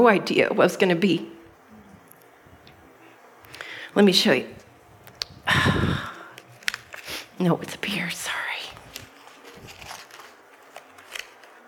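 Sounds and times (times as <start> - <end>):
speech: 0.0 - 1.3, 4.0 - 4.6, 7.4 - 8.5
crinkly paper sheet rustling as it is unfolded: 6.3 - 11.6.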